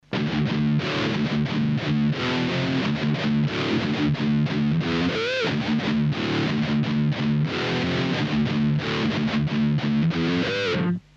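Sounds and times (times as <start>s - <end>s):
guitar through compressor pedal with distortion: 0.0s - 11.1s.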